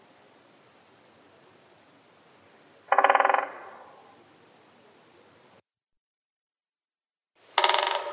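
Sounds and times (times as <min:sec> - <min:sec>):
great spotted woodpecker drumming: 0:02.9 - 0:03.8, 0:07.6 - 0:08.1.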